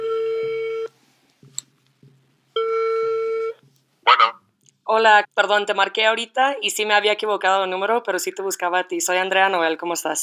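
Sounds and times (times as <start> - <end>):
telephone ringback tone through a phone line: 0.0 - 0.9, 2.6 - 3.6
speech: 4.9 - 10.2.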